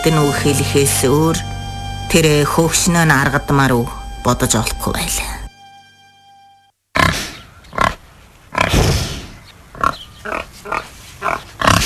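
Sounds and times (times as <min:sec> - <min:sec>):
speech: 0:00.0 - 0:05.4
pig grunting: 0:07.0 - 0:11.8.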